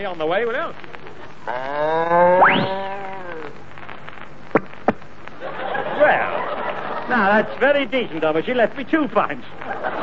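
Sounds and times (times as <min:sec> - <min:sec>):
speech: 0:00.0 - 0:00.9, 0:01.5 - 0:02.9, 0:07.1 - 0:10.0
voice imitating a cow with a droning moo: 0:01.5 - 0:03.6
laughter: 0:05.4 - 0:07.8, 0:09.6 - 0:10.0.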